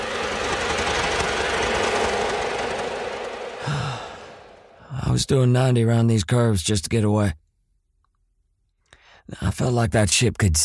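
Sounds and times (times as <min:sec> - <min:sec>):
buzzing diesel-like engine drone with a rough rattle: 0:00.0 - 0:04.9
speech: 0:05.1 - 0:07.4, 0:09.3 - 0:10.6.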